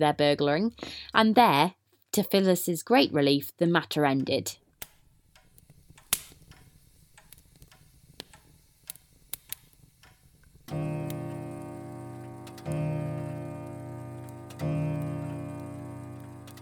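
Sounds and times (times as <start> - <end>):
speech: 0.0 - 4.6
clock ticking softly in a drawing room: 5.4 - 16.6
rich ringing clock chime strikes: 10.7 - 16.6.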